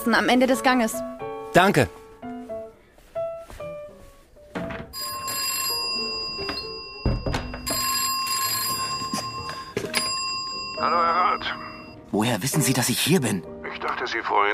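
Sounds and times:
speech: 0.0s - 2.0s, 10.8s - 14.5s
telephone bell ringing with an incoming call: 4.9s - 12.0s.

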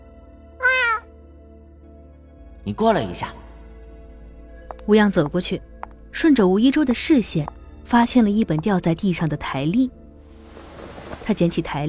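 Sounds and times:
white cat meowing: 0.6s - 1.1s
speech: 2.6s - 3.5s, 4.9s - 10.0s, 11.3s - 11.8s.

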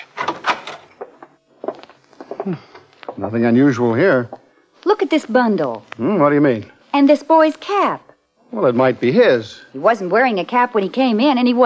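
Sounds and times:
hotel room door being unlocked and pushed open: 0.0s - 0.9s
speech: 2.4s - 11.6s.

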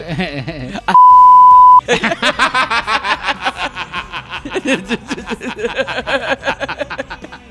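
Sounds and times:
censor beep over a name: 0.9s - 1.8s
laughter: 1.8s - 7.4s.

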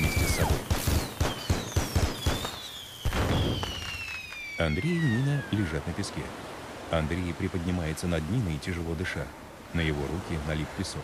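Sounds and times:
cartridges in a box exploding on sand: 0.0s - 4.1s
speech: 4.6s - 11.0s.

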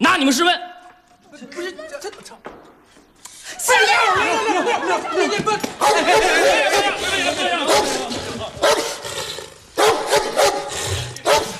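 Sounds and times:
speech: 0.0s - 0.8s, 3.7s - 8.1s
laughter: 3.8s - 8.8s
dog barking: 7.7s - 9.0s, 9.8s - 11.5s.

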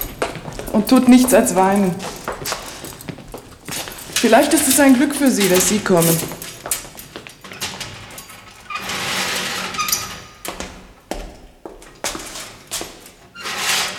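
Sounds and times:
prison cell door bolts rattling and clanking: 0.0s - 10.5s
prison cell door hinges creaking: 0.0s - 10.8s
speech: 0.8s - 2.1s, 4.2s - 6.4s.

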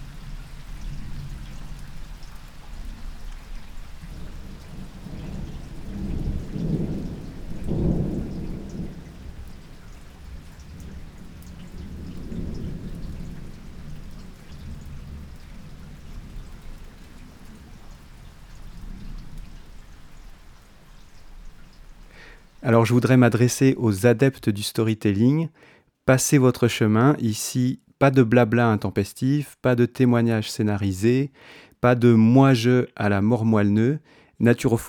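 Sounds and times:
thunder rumbling in an August afternoon storm: 0.0s - 22.7s
steady downpour of rain: 0.0s - 23.7s
speech: 22.6s - 34.8s.

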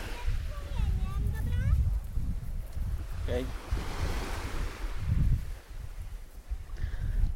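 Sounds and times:
gentle waves of a calm sea lapping on a beach: 0.0s - 7.3s
steady wind rumble across the microphone: 0.0s - 7.3s.

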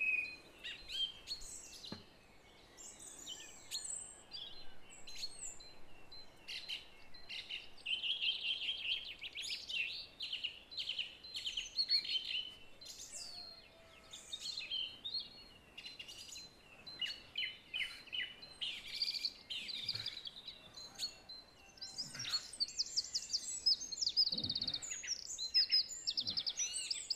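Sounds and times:
song thrush singing: 0.0s - 27.1s.

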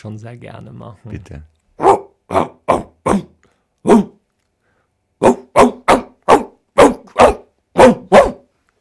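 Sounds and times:
speech: 0.0s - 2.5s
dog barking: 1.8s - 4.2s, 5.2s - 8.5s.

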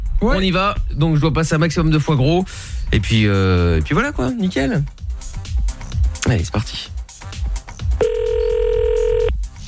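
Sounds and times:
speech: 0.2s - 5.0s, 6.3s - 7.0s
telephone tone on an international call to Canada: 8.0s - 9.3s.

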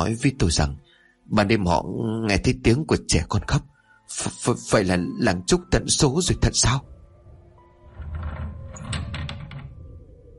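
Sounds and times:
speech: 0.0s - 7.0s
village school window flung open by a gust: 7.8s - 9.8s.

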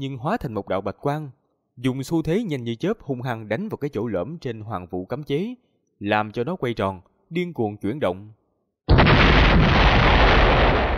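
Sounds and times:
speech: 0.0s - 8.4s
loud explosion sound effect: 8.9s - 10.9s.

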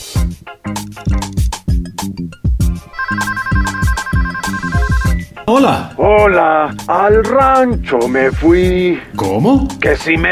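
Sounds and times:
rhythmic bass-heavy musical beat: 0.0s - 2.8s, 3.5s - 5.4s, 6.0s - 10.2s
studio telephone ringing with an electronic melodic ringtone: 2.8s - 5.3s
speech: 5.5s - 10.2s.

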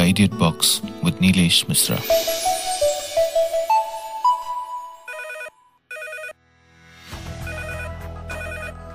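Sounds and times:
music: 0.0s - 5.1s, 6.4s - 8.9s
speech: 0.2s - 2.6s
rising melodic phrase: 1.9s - 5.3s
telephone bell ringing: 2.1s - 6.4s, 7.5s - 8.8s.

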